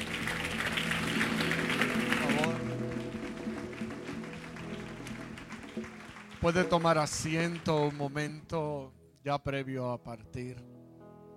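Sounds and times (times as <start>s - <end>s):
audience applauding after a prayer: 0.0s - 8.5s
speech: 6.4s - 10.7s.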